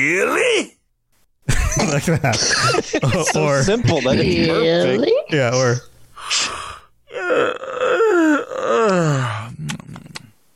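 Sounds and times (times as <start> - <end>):
speech: 0.0 - 0.8, 1.8 - 5.9
laughter: 1.5 - 5.0
person yawning with a voiced groan: 6.2 - 10.2.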